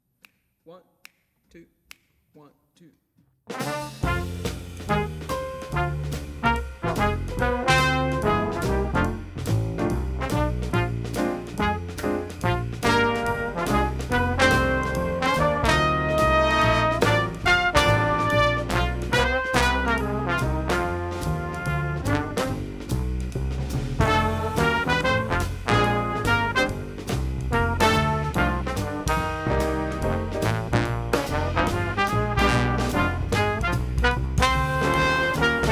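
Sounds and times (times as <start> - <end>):
jazz brass playing: 3.5 - 35.7.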